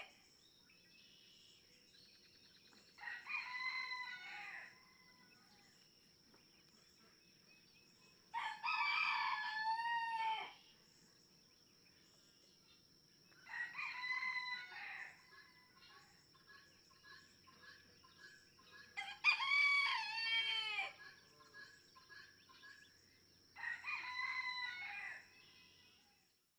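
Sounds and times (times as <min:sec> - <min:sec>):
red junglefowl rooster crowing in a barnyard in Kentucky: 0:03.0 - 0:04.8, 0:08.4 - 0:10.6, 0:13.5 - 0:15.2, 0:19.0 - 0:21.0, 0:23.6 - 0:25.2.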